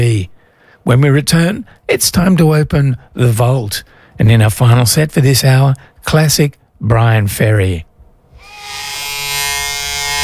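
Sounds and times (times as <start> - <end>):
speech: 0.8 - 7.9
Remington electric razor shaving: 8.4 - 10.2.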